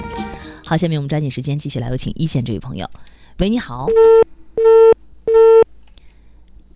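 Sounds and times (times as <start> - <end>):
speech: 0.7 - 4.3
telephone busy signal beeps on a dropped call-in line: 3.9 - 5.7.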